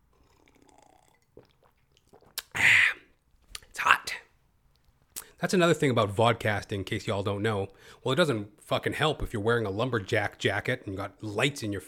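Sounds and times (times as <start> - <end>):
person slurping a drink of water: 0.1 - 3.7
quiet mouth clicks: 0.2 - 3.8
speech: 5.4 - 11.8.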